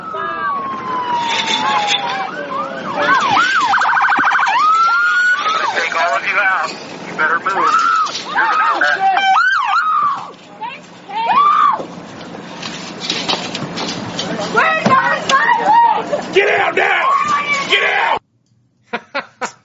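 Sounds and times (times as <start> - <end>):
climate activists shrieking and yelling at a highway roadblock: 0.0 - 6.7, 7.4 - 10.4, 11.1 - 11.9, 14.6 - 18.2
high piercing screams: 0.3 - 6.6, 7.5 - 10.3, 11.1 - 11.9, 14.6 - 18.2
laughter: 18.9 - 19.6.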